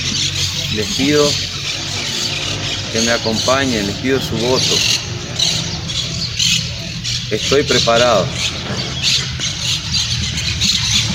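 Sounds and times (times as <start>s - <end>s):
parakeets squawking loudly: 0.0s - 11.1s
speech: 0.7s - 1.6s, 2.9s - 5.5s, 7.3s - 9.4s
steady low rumble: 1.0s - 11.1s.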